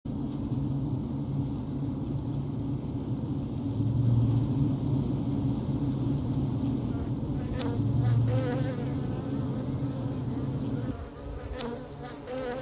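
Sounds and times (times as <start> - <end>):
faint rustles: 0.1 - 12.6
honey bees humming inside a hive: 0.1 - 12.6.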